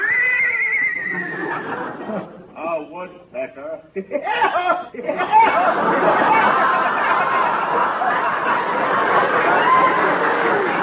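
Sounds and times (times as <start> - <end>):
horse whinnying: 0.0 - 1.8
laughter: 1.1 - 2.5, 4.0 - 10.8
speech: 3.0 - 6.7.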